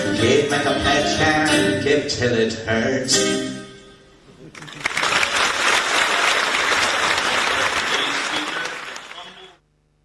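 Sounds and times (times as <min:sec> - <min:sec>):
speech: 0:00.2 - 0:03.6
spontaneous audience applause: 0:04.5 - 0:09.6.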